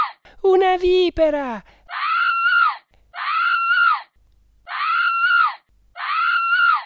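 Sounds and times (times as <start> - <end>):
woman screaming loudly and shrilly: 0.0 - 0.2, 1.9 - 6.8
speech: 0.4 - 1.8.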